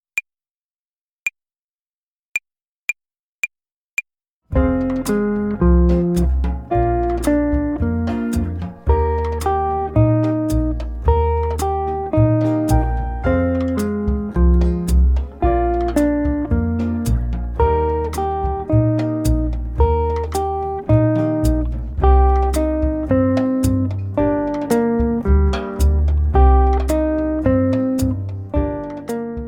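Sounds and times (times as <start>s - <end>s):
slow guitar arpeggio exercise play-along: 4.5s - 29.4s.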